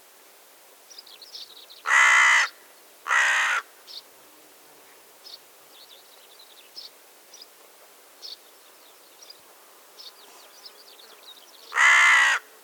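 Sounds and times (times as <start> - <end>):
Carrion crow cawing: 1.9 - 3.7, 11.7 - 12.5.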